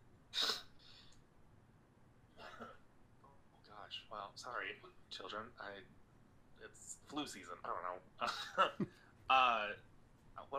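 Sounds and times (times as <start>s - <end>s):
sharp stifled sneeze: 0.4s - 0.7s
softer breathy sniff or exhale: 0.4s - 1.2s
speech: 3.9s - 6.0s, 6.6s - 10.5s
laughter: 8.2s - 9.0s.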